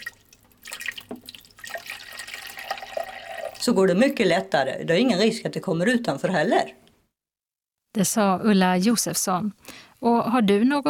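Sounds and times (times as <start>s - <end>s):
gurgling drips: 0.0s - 3.7s
water poured through funnel into coffee maker: 0.0s - 4.5s
speech: 3.6s - 6.8s, 8.0s - 10.8s.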